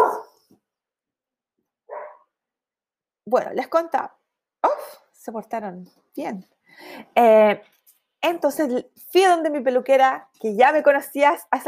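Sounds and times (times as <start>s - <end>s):
dogs barking at a person passing by: 0.0s - 0.4s, 1.9s - 2.3s
tiny dog yip: 1.9s - 2.2s
speech: 3.3s - 4.2s, 4.8s - 11.6s.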